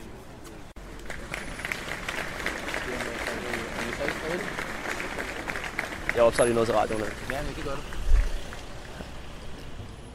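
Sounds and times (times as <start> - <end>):
crowd clapping at a peaceful demonstration outdoors: 0.8 - 9.4
speech: 6.2 - 8.0.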